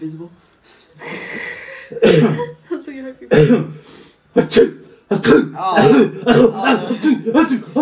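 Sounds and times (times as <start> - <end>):
speech: 0.0 - 7.8
person sneezing in an exaggerated fit: 1.9 - 2.5, 3.3 - 7.0
person coughing in an exaggerated fit: 1.9 - 2.6, 3.3 - 3.8, 4.4 - 7.2
laughter: 6.0 - 7.8.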